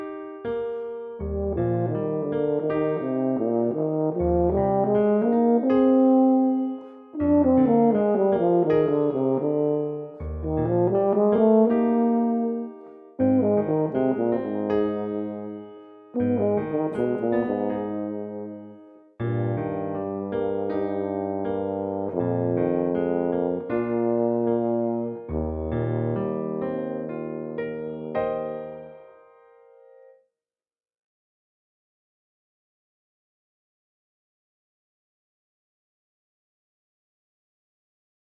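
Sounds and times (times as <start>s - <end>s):
tuba: 0.6s - 29.1s.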